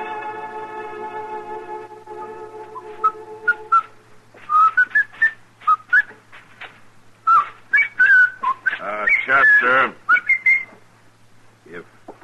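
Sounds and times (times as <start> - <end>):
person whistling a lively tune: 2.2 - 6.2, 7.3 - 10.8.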